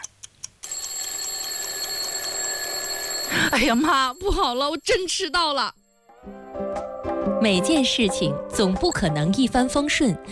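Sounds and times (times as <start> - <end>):
alarm clock ringing with a bright shrill steady tone: 0.6 - 5.8
speech: 3.5 - 6.4, 7.4 - 10.3.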